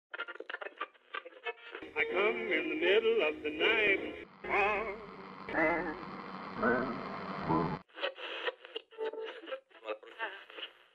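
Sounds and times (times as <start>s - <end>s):
speech: 1.8s - 7.7s
warbling radio interference tones: 4.3s - 7.8s.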